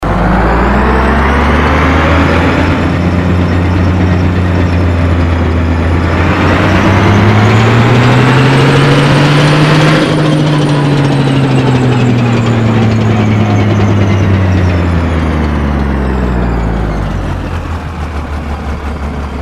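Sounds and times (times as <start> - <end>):
tank: 0.0 - 19.4.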